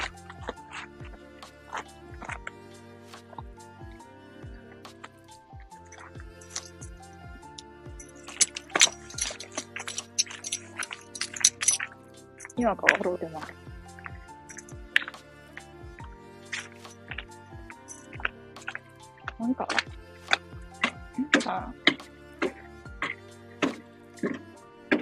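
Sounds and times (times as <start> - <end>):
dripping: 0.0 - 2.5, 4.4 - 7.0, 8.0 - 24.9
keys jangling as they are picked up: 5.9 - 6.9, 8.0 - 12.6, 14.5 - 14.8, 16.6 - 18.8
speech: 12.6 - 13.6.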